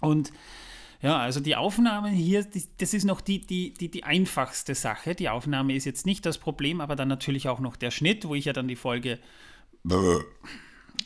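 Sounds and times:
speech: 0:00.0 - 0:11.0
person burping: 0:09.8 - 0:10.5.

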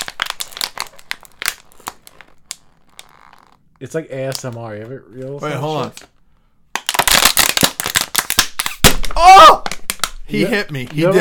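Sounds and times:
plastic bottle being crumpled: 0:00.0 - 0:04.6, 0:06.8 - 0:09.0
speech: 0:03.8 - 0:06.2, 0:10.3 - 0:11.1.

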